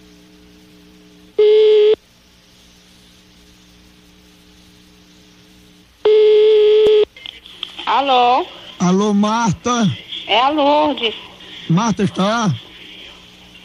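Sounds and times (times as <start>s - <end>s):
faint hum on a telephone line: 0.0s - 13.6s
ringing tone on a telephone line while a call is placed: 1.4s - 2.0s, 6.0s - 7.1s
speech: 8.0s - 12.6s.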